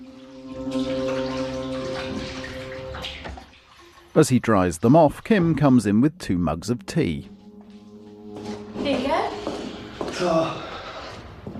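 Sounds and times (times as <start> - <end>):
water running from a tap into a sink: 0.0 - 4.8
speech: 4.2 - 7.3, 10.2 - 10.6.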